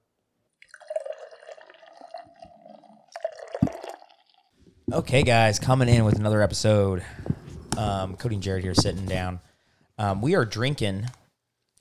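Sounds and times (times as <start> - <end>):
beer being poured: 0.6 - 4.5
speech: 4.9 - 11.2.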